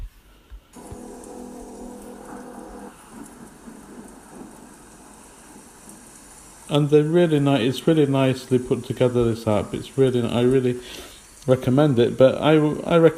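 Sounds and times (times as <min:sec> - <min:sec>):
deep rolling rumble of thunder: 0:00.8 - 0:09.3
steady rain: 0:00.8 - 0:13.1
speech: 0:06.7 - 0:13.1.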